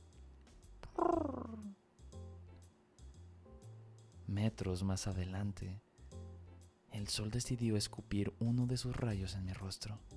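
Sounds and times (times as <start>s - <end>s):
pigeons cooing: 0.9s - 1.7s
speech: 4.4s - 5.8s, 7.0s - 10.1s.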